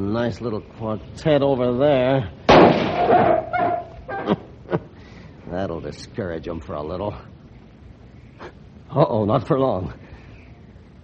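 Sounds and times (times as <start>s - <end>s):
speech: 0.0s - 4.5s, 5.6s - 7.3s, 8.9s - 10.0s
shotgun shot fired at a group: 2.5s - 3.5s.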